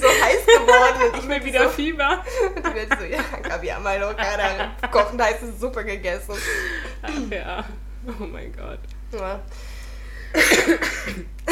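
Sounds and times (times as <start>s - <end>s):
laughter: 0.0s - 5.4s
speech: 0.8s - 9.7s, 10.3s - 11.5s
person coughing: 10.4s - 11.5s.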